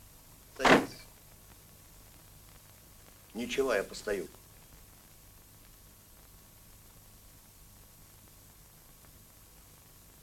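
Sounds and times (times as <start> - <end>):
door swinging shut: 0.6 - 1.0
speech: 3.4 - 4.4.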